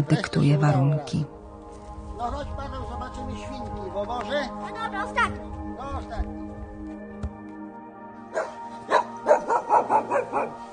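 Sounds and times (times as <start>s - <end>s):
speech: 0.0s - 1.4s, 2.2s - 6.5s, 8.3s - 8.6s, 10.2s - 10.7s
dog barking in sharp yaps: 8.3s - 10.6s.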